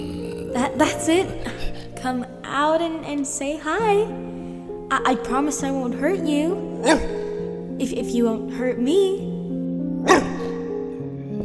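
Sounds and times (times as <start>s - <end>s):
speech: 0.6s - 7.2s, 7.8s - 9.3s
dog barking: 6.8s - 7.3s, 10.0s - 10.6s.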